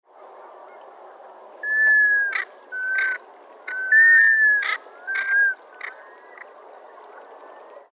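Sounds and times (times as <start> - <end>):
Black Scoter Melanitta americana calling: 1.7 - 6.4.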